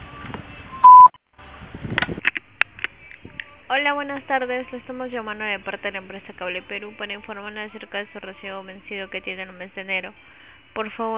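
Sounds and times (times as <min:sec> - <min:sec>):
voicemail recording tone electronic beep: 0:00.8 - 0:01.2
speech: 0:03.7 - 0:11.1.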